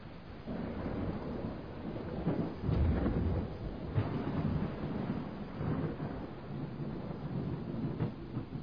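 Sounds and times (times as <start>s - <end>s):
thunderstorm rumbling: 0.0s - 8.6s.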